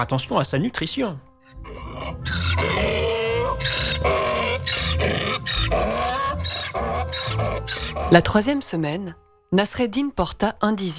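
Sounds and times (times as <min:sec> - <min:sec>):
speech: 0:00.0 - 0:02.9, 0:08.1 - 0:10.9
donkey braying with harsh hee-haw: 0:01.4 - 0:08.4.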